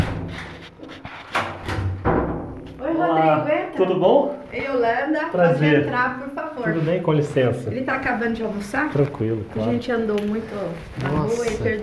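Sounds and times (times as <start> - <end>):
knocking on an apartment door: 1.6 - 2.6
speech: 3.0 - 11.8.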